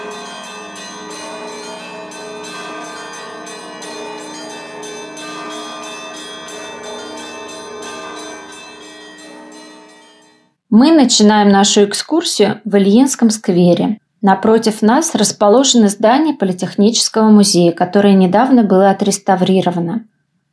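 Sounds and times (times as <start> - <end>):
many church bells ringing: 0.0 - 10.4
speech: 10.7 - 20.1.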